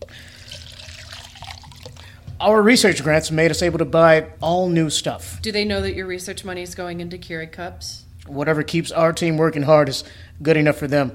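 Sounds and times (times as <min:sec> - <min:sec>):
water pouring from a filter pitcher: 0:00.0 - 0:02.2
speech: 0:02.4 - 0:11.1.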